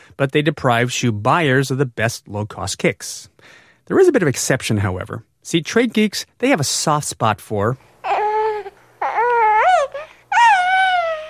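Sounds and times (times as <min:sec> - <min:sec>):
speech: 0:00.2 - 0:07.9
baby crying: 0:08.0 - 0:11.2.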